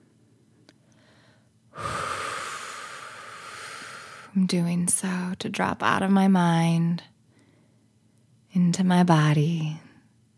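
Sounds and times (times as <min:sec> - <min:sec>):
person taking a deep breath: 0:01.0 - 0:04.4
speech: 0:04.4 - 0:07.1, 0:08.6 - 0:09.9.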